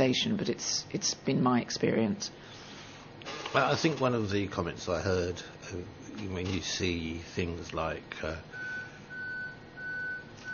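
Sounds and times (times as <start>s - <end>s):
speech: 0.0s - 2.6s, 3.2s - 8.5s
reversing lorry warning beeper beeping: 8.5s - 10.5s.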